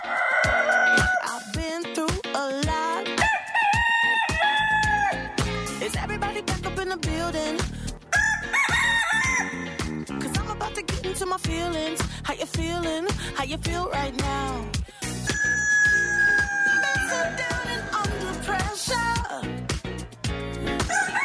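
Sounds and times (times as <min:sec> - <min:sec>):
rooster crowing: 0:00.0 - 0:01.5, 0:03.2 - 0:05.3, 0:08.1 - 0:09.8, 0:15.2 - 0:18.8, 0:20.8 - 0:21.2
driving rhythmic beat of a music track: 0:00.0 - 0:21.2
speech: 0:11.2 - 0:14.9.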